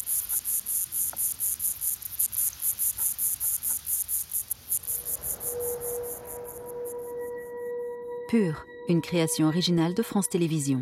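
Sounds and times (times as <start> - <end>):
lesser water boatman courtship song of high buzzing chirps: 0.0 - 8.2
faint sustained tone: 4.6 - 10.8
speech: 8.3 - 10.8.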